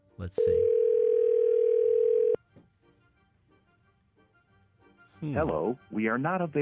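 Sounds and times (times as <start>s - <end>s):
speech: 0.2s - 0.8s, 5.2s - 6.6s
telephone dial tone while placing call: 0.6s - 2.4s.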